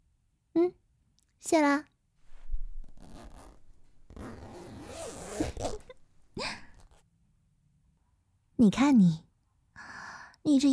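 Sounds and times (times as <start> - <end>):
speech: 1.4 - 1.9, 8.6 - 9.3, 10.4 - 10.7
dress zipper being unzipped: 2.3 - 6.0.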